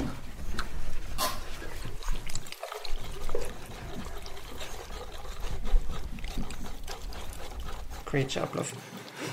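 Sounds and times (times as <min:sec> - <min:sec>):
crêpe batter being stirred in quick scraping strokes: 0:00.0 - 0:09.3
liquid pouring: 0:00.6 - 0:08.4
speech: 0:08.1 - 0:08.9.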